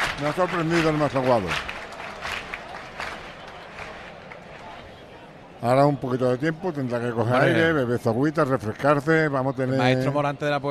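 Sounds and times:
crowd clapping rhythmic flamenco palmas: 0:00.0 - 0:05.2
constant murmur of crowd noise: 0:00.0 - 0:07.8
speech: 0:00.2 - 0:01.7, 0:05.6 - 0:10.6.

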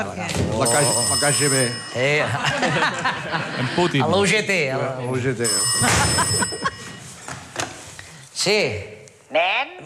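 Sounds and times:
speech: 0:00.0 - 0:06.8, 0:08.4 - 0:09.8
telephone ringing in a bright metallic trill: 0:00.6 - 0:02.6, 0:05.4 - 0:07.2
laughter: 0:02.2 - 0:04.1, 0:05.8 - 0:07.1.

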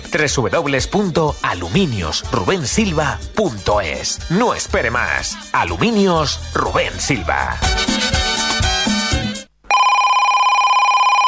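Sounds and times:
upbeat music: 0:00.0 - 0:09.5
speech: 0:00.1 - 0:08.2
telephone ringing with warbling electronic tone: 0:09.7 - 0:11.2.

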